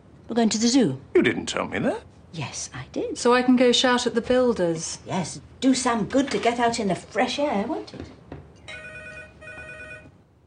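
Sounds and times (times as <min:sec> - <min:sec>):
speech: 0:00.3 - 0:08.2
telephone ringing in a home with two phone lines: 0:08.6 - 0:10.2.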